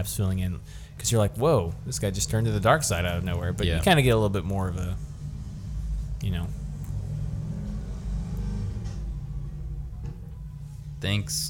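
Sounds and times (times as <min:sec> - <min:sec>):
speech: 0:00.0 - 0:05.1, 0:06.2 - 0:06.6, 0:11.0 - 0:11.4
motorcycle engine revving: 0:02.5 - 0:11.0.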